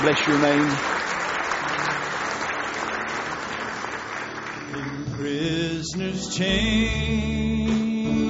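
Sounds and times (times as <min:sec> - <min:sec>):
speech: 0:00.0 - 0:01.0, 0:05.2 - 0:08.2
audience clapping hands in praise: 0:00.0 - 0:05.2.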